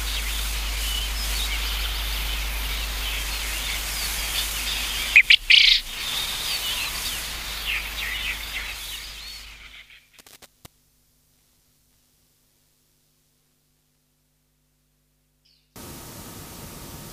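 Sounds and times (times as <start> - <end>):
faint twittering from other birds: 0.0 - 10.2
Japanese quail giving a harsh clipped three-note call: 4.4 - 7.1.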